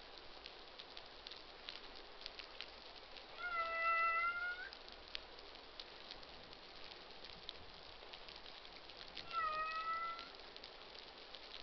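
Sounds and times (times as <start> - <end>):
constant hiss: 0.0 - 11.6
humpback whale tonal harmonic social cries: 3.4 - 4.8, 9.3 - 10.3.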